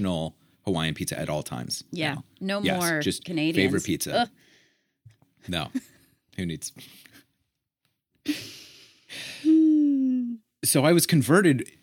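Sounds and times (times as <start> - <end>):
speech: 0.0 - 4.5, 5.4 - 7.2, 8.2 - 9.5, 10.6 - 11.8
person gasping: 8.3 - 10.0
person giving a sustained voiced ooh of amazement: 9.5 - 10.4.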